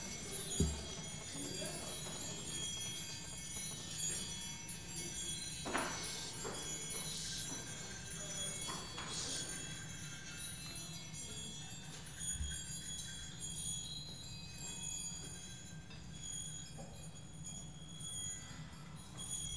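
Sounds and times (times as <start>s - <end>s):
small bells rung by children to open a service: 0.0s - 19.5s
soft knocks: 0.5s - 1.0s.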